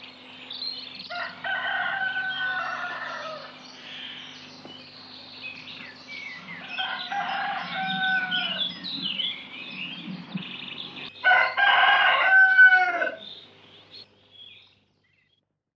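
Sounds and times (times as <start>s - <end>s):
rooster crowing: 1.1s - 3.6s, 6.5s - 8.9s, 11.2s - 13.3s.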